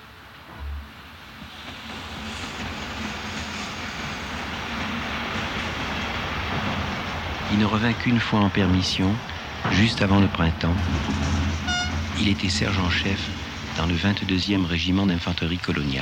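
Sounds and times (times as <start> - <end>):
train departing and rolling on rails: 0.0 - 15.9
low thump: 0.5 - 1.2
speech: 7.5 - 11.6, 12.2 - 15.9.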